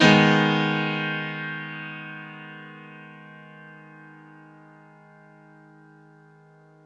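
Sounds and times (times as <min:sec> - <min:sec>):
grand piano one shot in G sharp minor: 0:00.0 - 0:04.5.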